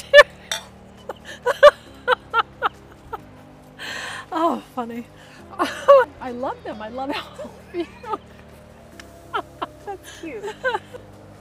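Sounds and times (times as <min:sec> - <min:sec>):
laughter: 0:00.0 - 0:00.5, 0:01.1 - 0:03.2, 0:05.5 - 0:08.6, 0:09.3 - 0:11.0
glasses clinking together in a toast: 0:00.2 - 0:00.8
speech: 0:04.8 - 0:08.2, 0:10.2 - 0:11.2.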